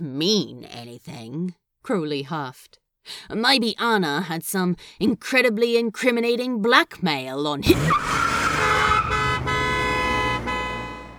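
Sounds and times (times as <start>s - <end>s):
speech: 0.0s - 8.4s
car horn blast: 8.0s - 11.1s.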